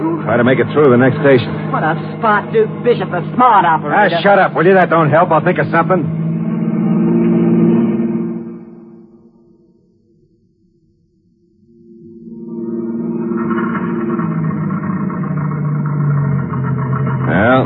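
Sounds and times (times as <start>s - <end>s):
steady rumbling: 0.0s - 8.8s, 12.5s - 17.6s
car engine sputtering out of gas: 0.0s - 9.0s, 12.7s - 17.6s
speech: 0.3s - 6.2s.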